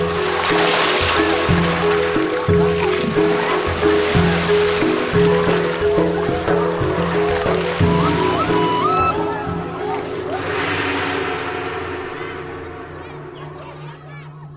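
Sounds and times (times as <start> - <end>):
flowing river water: 0.0 - 14.5
low sustained musical tones shifting pitch: 0.0 - 14.5.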